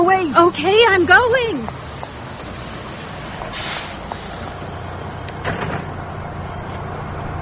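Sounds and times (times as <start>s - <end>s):
bus engine idling: 0.0s - 7.4s
speech: 0.3s - 1.8s
bus door pneumatic hiss: 1.6s - 5.9s
bus doors sliding open: 1.6s - 6.9s.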